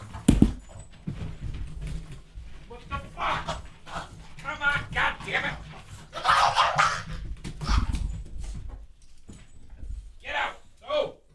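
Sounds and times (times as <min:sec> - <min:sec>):
shuffling: 0:00.0 - 0:11.3
dogs yelping in a scuffle: 0:05.9 - 0:08.1
dog snarling: 0:06.1 - 0:07.9.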